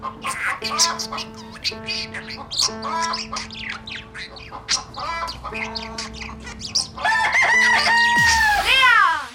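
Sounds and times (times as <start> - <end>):
sustained piano notes: 0.0 - 8.2
budgerigar chirps and chatter: 0.0 - 8.4
chicken crowing: 7.0 - 8.6.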